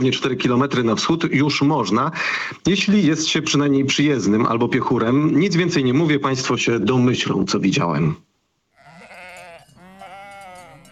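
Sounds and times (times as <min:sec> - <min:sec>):
speech: 0:00.0 - 0:08.3
Polish mountain sheep bleating: 0:08.7 - 0:10.9.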